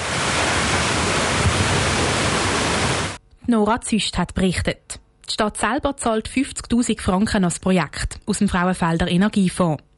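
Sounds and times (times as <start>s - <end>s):
water splashing at a small water wheel at the end of a canal: 0.0s - 3.2s
speech: 3.5s - 9.9s.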